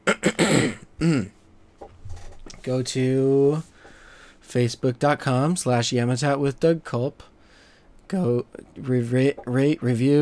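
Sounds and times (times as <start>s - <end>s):
person coughing: 0.0s - 1.4s
speech: 1.0s - 1.4s, 2.6s - 3.7s, 4.5s - 7.3s, 8.1s - 10.2s
faint trailing breath: 3.7s - 4.4s, 7.4s - 8.0s.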